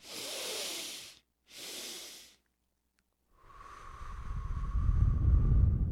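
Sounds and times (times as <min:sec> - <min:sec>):
long slow exhale with a low rumbling wind-like hiss: 0:00.0 - 0:02.4, 0:03.4 - 0:05.9
breathy inhalations in a breathing exercise: 0:00.0 - 0:02.5, 0:03.4 - 0:05.3.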